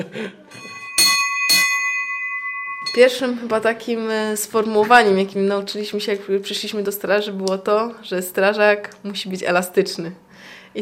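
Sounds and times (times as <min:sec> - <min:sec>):
speech: 0:00.0 - 0:00.7, 0:02.9 - 0:10.6
commemorative bell struck at a fire station: 0:00.5 - 0:04.3.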